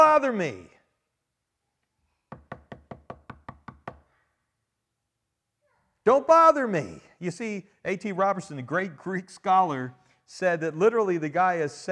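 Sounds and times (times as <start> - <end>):
speech: 0.0 - 0.7, 6.1 - 11.9
quick loud knocking on a door: 2.3 - 4.1.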